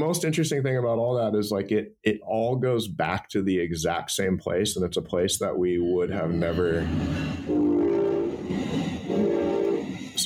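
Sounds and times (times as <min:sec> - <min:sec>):
speech: 0:00.0 - 0:08.0
train rumbling past: 0:06.4 - 0:10.2
train horn: 0:07.5 - 0:10.2.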